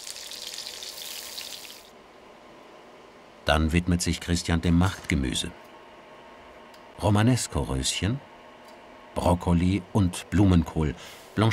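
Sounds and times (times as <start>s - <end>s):
venison medallions searing in hot rapeseed oil: 0.0s - 1.9s
speech: 3.5s - 5.6s, 7.0s - 8.3s, 9.2s - 11.5s.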